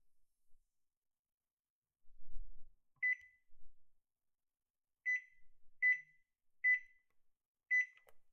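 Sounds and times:
microwave beeps: 0:03.0 - 0:03.4, 0:05.1 - 0:07.0, 0:07.7 - 0:08.0.

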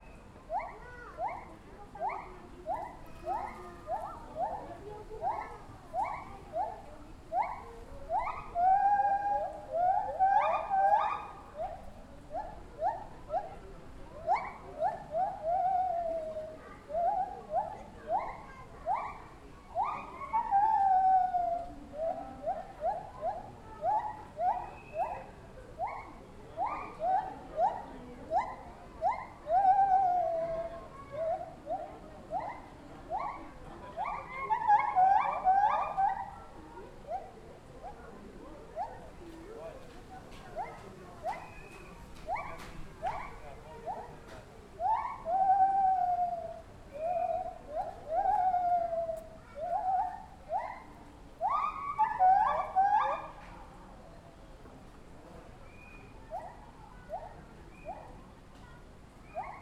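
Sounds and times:
distant white-handed gibbon calls: 0:00.0 - 0:13.6, 0:14.2 - 0:39.2, 0:40.5 - 0:53.8, 0:55.6 - 0:58.2, 0:59.2 - 0:59.6
zoo ambience: 0:00.0 - 0:59.6.

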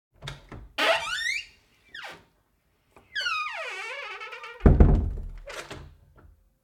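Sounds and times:
wooden door opening and closing, creaking: 0:00.2 - 0:02.3, 0:03.0 - 0:06.0.

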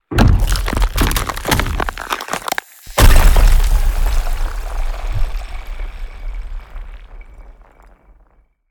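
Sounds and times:
huge designed iceberg impact crack and shatter: 0:00.1 - 0:08.4.

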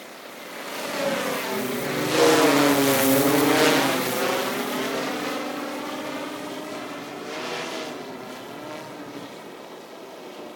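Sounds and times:
quadcopter flying by slowly outdoors: 0:00.1 - 0:10.5.

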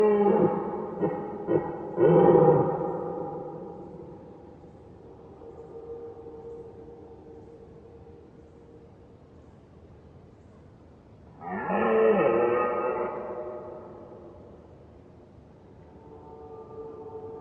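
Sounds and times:
red deer roaring at far distance: 0:00.0 - 0:04.2, 0:11.4 - 0:14.0.

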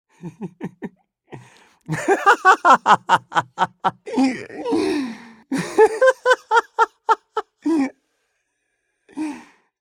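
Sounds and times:
joyful male laughter: 0:00.2 - 0:04.8, 0:05.5 - 0:07.9.

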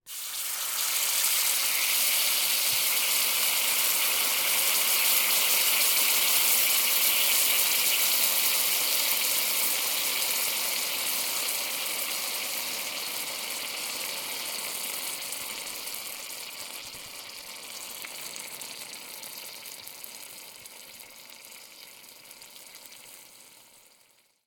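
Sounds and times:
sizzling frying pan foley: 0:00.0 - 0:24.4.

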